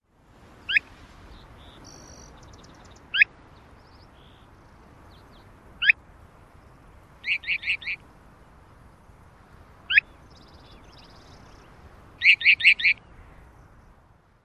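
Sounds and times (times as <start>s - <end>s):
Mountain Plover calls: 0.6s - 6.0s, 7.2s - 8.2s, 9.8s - 13.5s.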